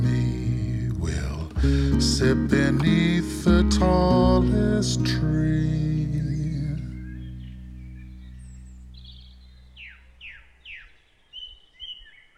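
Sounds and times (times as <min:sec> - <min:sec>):
music: 0:00.0 - 0:09.1
speech: 0:01.6 - 0:06.2
bird singing bright quick downward-sweeping chirps: 0:02.1 - 0:12.3.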